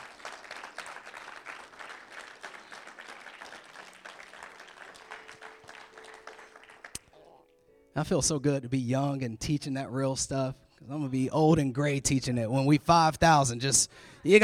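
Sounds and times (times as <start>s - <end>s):
large crowd applauding: 0.0s - 7.4s
speech: 8.0s - 14.4s.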